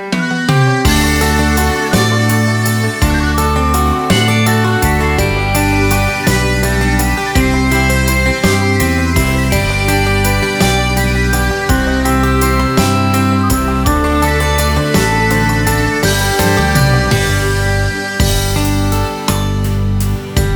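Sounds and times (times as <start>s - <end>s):
violin playing: 0.2s - 20.4s.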